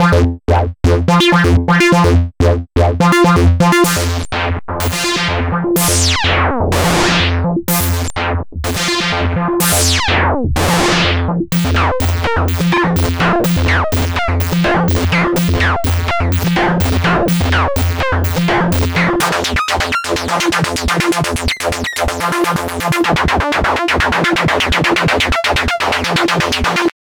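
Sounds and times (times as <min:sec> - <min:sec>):
analog bassline: 0:00.0 - 0:26.9.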